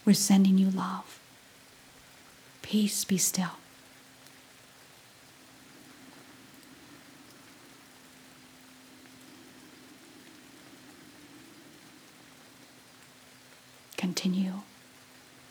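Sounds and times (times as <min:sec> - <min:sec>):
speech: 0:00.0 - 0:01.2, 0:02.7 - 0:03.6
faint low hum: 0:00.0 - 0:15.4
rain falling: 0:00.0 - 0:15.4.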